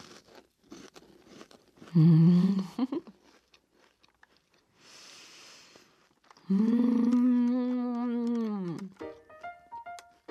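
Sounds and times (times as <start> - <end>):
crunching and chewing of a flaky pie snack: 0.0 - 10.2
speech: 2.0 - 3.2.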